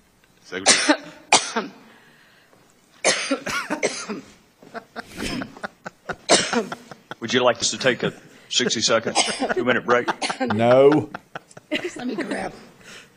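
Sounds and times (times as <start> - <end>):
speech: 0.5 - 1.8, 6.6 - 11.3
person coughing: 0.6 - 1.8, 3.0 - 4.4, 5.1 - 5.6, 6.2 - 6.9, 9.1 - 10.6
laughter: 4.6 - 12.7.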